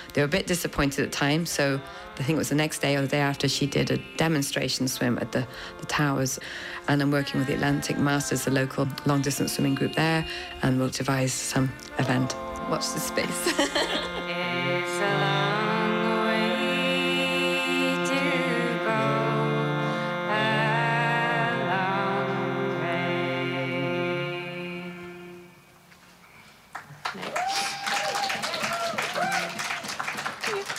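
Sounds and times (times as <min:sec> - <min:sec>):
woman singing a slow song: 0:00.0 - 0:25.4
speech: 0:00.2 - 0:13.8
laughter: 0:13.2 - 0:14.3
scattered clapping: 0:26.7 - 0:30.7.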